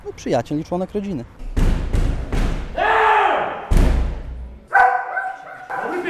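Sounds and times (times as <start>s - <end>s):
speech: 0.0s - 1.4s
heavy thumps and knocks: 1.4s - 2.8s, 3.7s - 4.4s
working dog barking at a remand prison in Poland: 4.7s - 6.0s.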